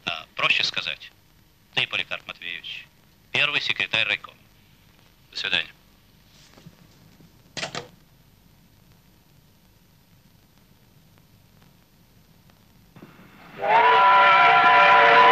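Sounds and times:
speech: 0.5s - 1.2s, 1.8s - 4.4s, 5.4s - 5.8s, 13.6s - 13.9s
train arriving at a station: 13.0s - 15.2s
train whistle or horn at a station: 13.4s - 15.2s.

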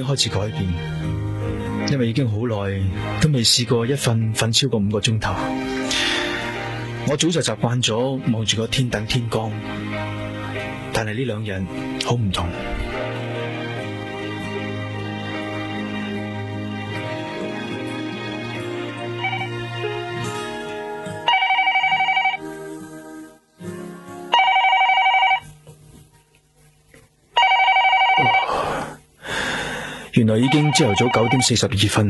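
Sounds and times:
speech: 0.0s - 1.2s, 1.8s - 6.2s, 7.1s - 10.0s, 11.0s - 12.8s, 30.8s - 32.0s
soft music: 0.0s - 32.0s
electronic telephone ringing: 19.2s - 19.6s, 21.2s - 22.5s, 24.3s - 25.5s, 27.4s - 28.5s, 30.4s - 31.6s.

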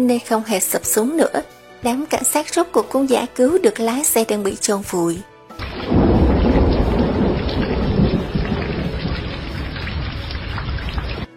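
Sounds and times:
speech: 0.0s - 5.3s
deep rumbling thunder in a thunderstorm: 5.6s - 11.3s
heavy cold rain pouring down: 5.6s - 11.3s.

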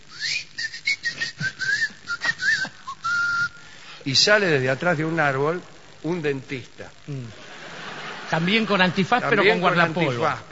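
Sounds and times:
person whistling: 0.1s - 3.7s
speech: 4.0s - 7.4s, 8.3s - 10.5s
laughter: 7.3s - 10.5s.

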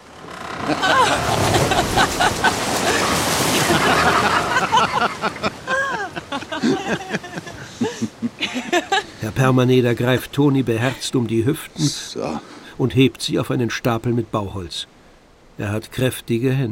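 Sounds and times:
river rapids splashing spray over a raw log raft: 0.0s - 12.7s
people laughing: 0.6s - 9.2s
speech: 9.4s - 15.0s, 15.6s - 16.7s.

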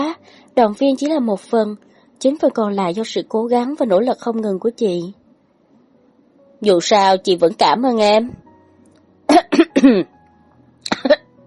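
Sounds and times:
speech: 0.2s - 5.2s, 6.6s - 8.4s, 9.3s - 10.2s
woman dry coughing from choking on a sip of water: 9.3s - 10.1s, 10.9s - 11.3s.

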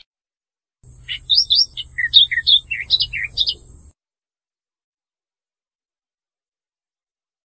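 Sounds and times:
bird giving sharp high warbled notes and a trilled phrase: 0.9s - 3.9s.

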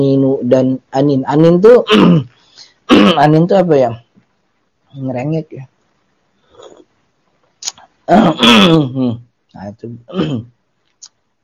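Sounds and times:
speech: 0.0s - 2.3s, 2.9s - 4.0s, 4.9s - 5.7s, 8.1s - 10.6s
man clearing his throat: 1.9s - 3.3s, 8.1s - 9.2s, 10.1s - 10.5s.

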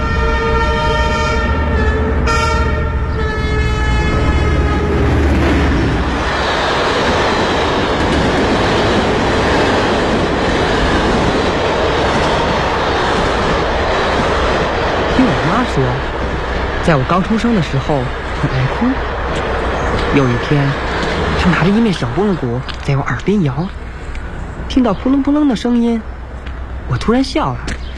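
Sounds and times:
train horn: 0.0s - 5.4s
train wheels and cars rolling by on a railway line: 0.0s - 27.9s
speech: 16.9s - 19.1s, 20.1s - 23.8s, 24.7s - 26.1s, 26.9s - 27.7s.

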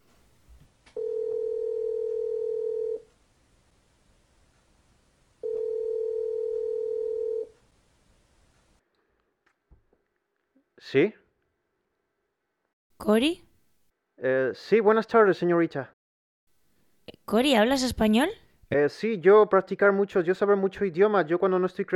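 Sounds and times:
telephone line tone as a call is placed: 1.0s - 3.1s, 5.4s - 7.5s
speech: 10.8s - 11.2s, 13.0s - 13.4s, 14.2s - 16.0s, 17.3s - 21.9s.

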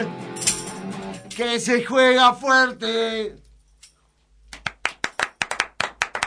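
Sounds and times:
speech: 1.4s - 3.4s
applause from outside: 4.5s - 6.2s.

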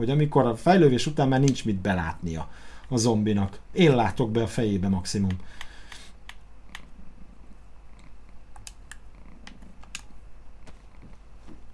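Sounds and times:
speech: 0.0s - 5.6s
cat purring in front of a computer monitor: 6.7s - 9.8s.

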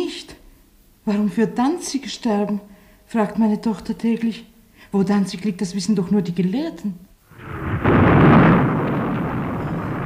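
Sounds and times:
speech: 1.1s - 7.1s
anti-aircraft batteries firing near a railway station during wartime: 7.4s - 10.0s.

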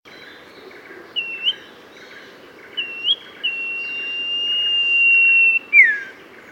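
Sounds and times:
steady low hiss: 0.1s - 6.5s
Oriental magpie-robin whistled song: 1.2s - 1.7s, 2.7s - 6.5s.

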